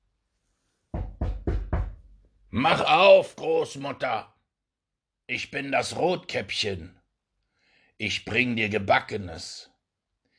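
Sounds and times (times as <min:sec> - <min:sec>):
firm knocks on a wooden door: 0:00.9 - 0:02.1
speech: 0:02.5 - 0:04.3, 0:05.3 - 0:07.0, 0:08.0 - 0:09.7.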